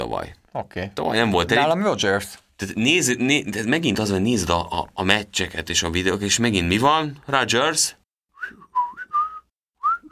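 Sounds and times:
speech: 0:00.0 - 0:08.6
person whistling a tune: 0:08.3 - 0:10.1.

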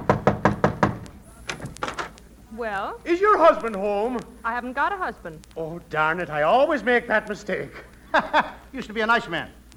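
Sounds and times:
knocking on a door: 0:00.0 - 0:01.1
speech: 0:02.6 - 0:09.6
laughter: 0:07.7 - 0:08.9.

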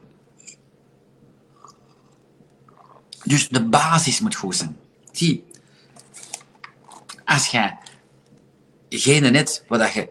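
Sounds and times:
sipping and swallowing a drink: 0:01.5 - 0:03.2
speech: 0:03.3 - 0:05.5, 0:07.3 - 0:07.8, 0:08.9 - 0:10.0.

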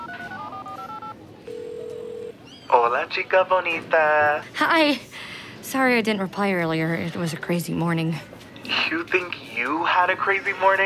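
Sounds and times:
phone touch-tone dialing beeps placing a call on voice command: 0:00.0 - 0:02.3
speech: 0:02.8 - 0:10.8.

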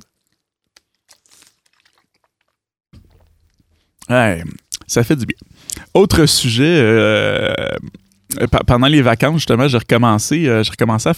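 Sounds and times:
person taking a sip of water: 0:00.0 - 0:06.0, 0:07.2 - 0:08.4
speech: 0:04.1 - 0:11.1.

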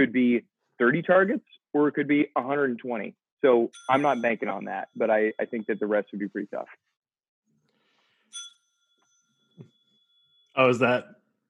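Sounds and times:
speech: 0:00.0 - 0:06.9, 0:10.6 - 0:11.2
bright bell ding sound effect awarding a point: 0:03.7 - 0:05.8, 0:08.3 - 0:10.7.

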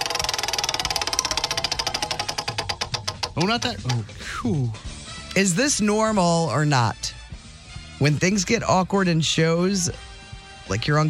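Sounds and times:
prize wheel being spun: 0:00.0 - 0:04.3
speech: 0:03.4 - 0:07.2, 0:08.0 - 0:10.1, 0:10.7 - 0:11.0.

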